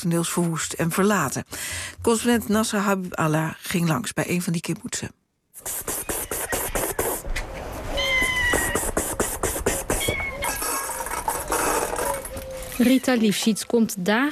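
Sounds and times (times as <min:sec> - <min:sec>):
speech: 0:00.0 - 0:05.9, 0:12.8 - 0:14.3
abandoned cats meowing while being fed: 0:06.0 - 0:09.0, 0:09.6 - 0:12.9.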